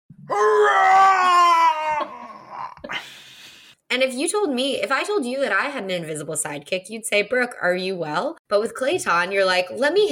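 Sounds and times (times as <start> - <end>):
speech: 0.3 - 1.0, 3.9 - 10.0
man's primal scream from a video game: 0.3 - 2.8.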